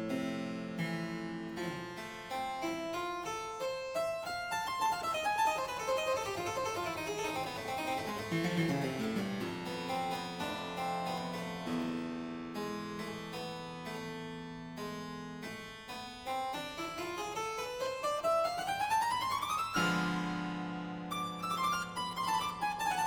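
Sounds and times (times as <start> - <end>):
modulating prelude in F major to E minor: 0.2 - 23.0.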